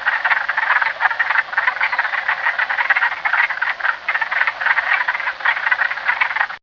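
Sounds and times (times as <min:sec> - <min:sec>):
wood frog Rana sylvatica chorus clucking: 0:00.0 - 0:06.6.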